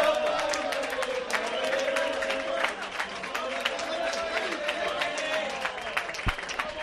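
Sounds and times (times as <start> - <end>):
crowd of diners applauding in a restaurant: 0.0 - 6.8
excited voices and cheers of diners in a restaurant: 0.0 - 6.8.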